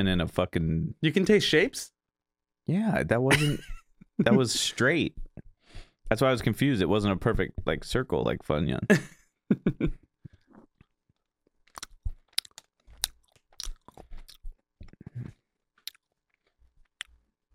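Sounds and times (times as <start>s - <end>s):
speech: 0.0s - 2.0s, 2.7s - 5.2s, 6.1s - 10.0s
person chewing a candy-coated gummy bear with chamoy flavoring: 10.2s - 17.3s.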